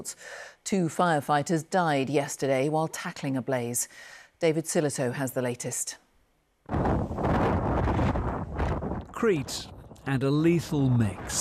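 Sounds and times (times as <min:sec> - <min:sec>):
speech: 0:00.0 - 0:06.0, 0:09.2 - 0:11.3
storm force wind roaring during wildfires on Crete: 0:06.7 - 0:11.3.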